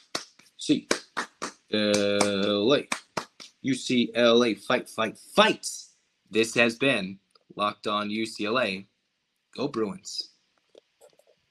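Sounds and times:
rhythmic eight-count hand clapping chant: 0:00.0 - 0:03.6
speech: 0:00.7 - 0:01.0, 0:01.7 - 0:03.0, 0:03.6 - 0:08.9, 0:09.5 - 0:10.3.

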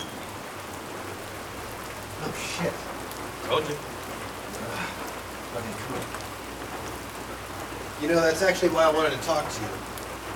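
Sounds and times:
steady rain falling: 0:00.0 - 0:10.3
speech: 0:02.3 - 0:04.0, 0:04.6 - 0:06.2, 0:08.0 - 0:09.9.

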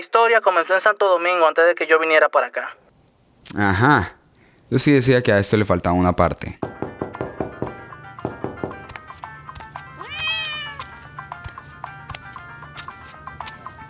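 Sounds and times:
speech: 0:00.0 - 0:02.8, 0:03.4 - 0:06.8
person shooing a cat: 0:03.4 - 0:04.8, 0:10.0 - 0:11.7
sharp taps and knocks: 0:04.2 - 0:13.8
cat meowing: 0:10.0 - 0:11.2.

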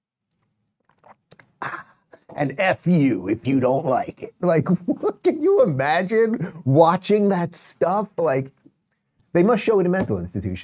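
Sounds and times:
person slurping coffee: 0:00.8 - 0:02.3
wet mouth sounds: 0:00.8 - 0:02.3
speech: 0:02.4 - 0:08.6, 0:09.3 - 0:10.6.

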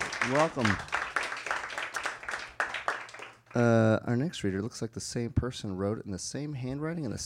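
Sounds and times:
audience applauding: 0:00.0 - 0:03.8
speech: 0:00.2 - 0:01.0, 0:03.6 - 0:07.2.

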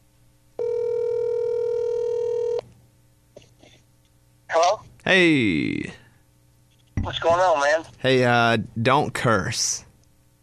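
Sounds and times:
electronic ringback tone on an outgoing phone call: 0:00.6 - 0:02.6
speech: 0:05.1 - 0:06.0, 0:07.1 - 0:09.9.

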